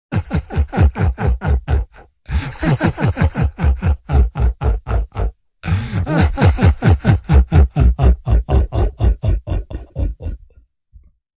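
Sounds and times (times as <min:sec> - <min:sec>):
evil pitch shifted laugh: 0:00.1 - 0:10.6.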